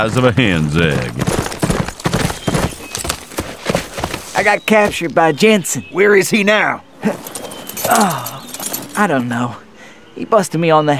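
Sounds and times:
speech: 0.0 - 1.4, 4.4 - 8.3, 9.0 - 9.6, 10.2 - 10.9
horse hooves clip-clopping at a walk: 0.9 - 5.1, 7.0 - 9.3.

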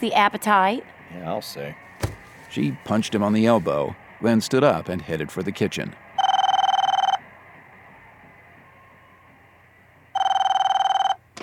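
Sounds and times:
speech: 0.0 - 1.9, 2.5 - 6.0
telephone ringing with bright trilling electronic bell: 6.2 - 7.2, 10.1 - 11.2.

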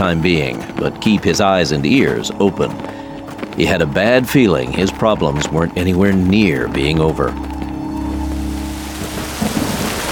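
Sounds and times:
speech: 0.0 - 3.0, 3.6 - 7.5
heavy rain pouring through forest foliage during a thunderstorm: 8.1 - 10.1.

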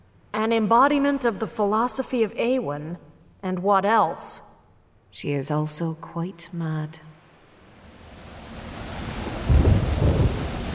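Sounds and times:
speech: 0.4 - 4.5, 5.1 - 7.2
steady rain hissing: 7.5 - 10.7
deep rolling rumble of thunder: 7.6 - 10.7.

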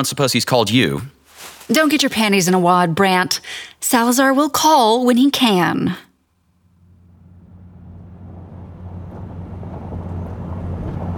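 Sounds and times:
speech: 0.0 - 6.1
car driving slowly through snow with low engine rumble: 6.4 - 11.1.

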